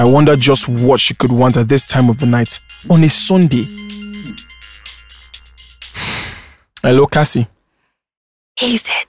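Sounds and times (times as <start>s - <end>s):
speech: 0.0s - 3.9s, 6.8s - 7.6s, 8.6s - 9.0s
phone ringtone with bright electronic tones: 2.6s - 4.9s.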